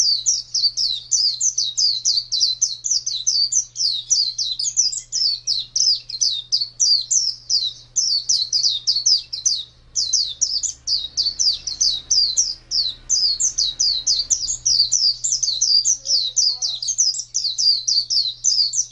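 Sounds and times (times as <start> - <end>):
low steady hum: 0.0 - 18.9
white-eye song: 7.4 - 18.4.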